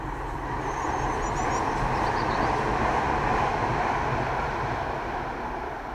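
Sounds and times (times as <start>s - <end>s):
tram rolling past a garden outdoors: 0.0s - 5.9s
faint chirps of birds: 0.6s - 2.6s.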